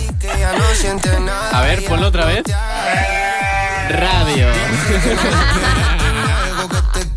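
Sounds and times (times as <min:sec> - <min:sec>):
laughter: 0:00.2 - 0:02.0, 0:04.1 - 0:07.0
speech: 0:00.7 - 0:03.2, 0:03.9 - 0:06.0
goat bleating: 0:02.7 - 0:05.3.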